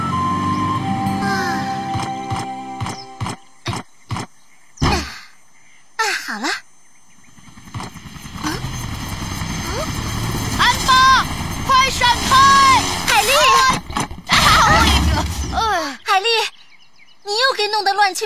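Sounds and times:
faulty helicopter propeller whirring in an animated children's story: 0:00.0 - 0:03.9, 0:07.0 - 0:15.7
lively voices talking: 0:00.0 - 0:05.4, 0:07.3 - 0:18.2.

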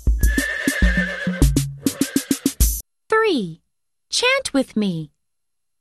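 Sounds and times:
horse whinnying in a long wavering high neigh: 0:00.2 - 0:02.6
speech: 0:03.3 - 0:05.1.

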